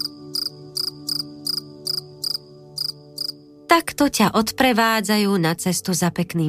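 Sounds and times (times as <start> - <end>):
crickets chirping: 0.0 - 3.5
speech: 3.7 - 6.4.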